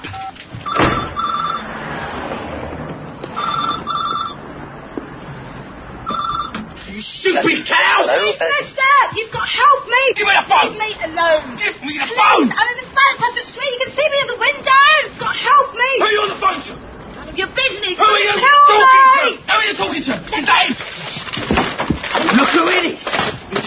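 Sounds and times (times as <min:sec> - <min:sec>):
telephone ringing tone after a number is dialed: 0:00.2 - 0:01.7, 0:03.4 - 0:04.4, 0:06.0 - 0:06.6
people talking loudly: 0:06.9 - 0:20.9
speech: 0:07.0 - 0:21.0, 0:22.1 - 0:23.6.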